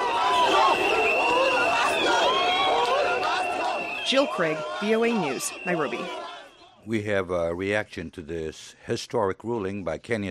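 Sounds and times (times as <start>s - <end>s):
large outdoor crowd of supporters cheering and shouting in the streets in Kenya: 0.0s - 6.8s
speech: 4.1s - 6.2s, 6.8s - 10.2s.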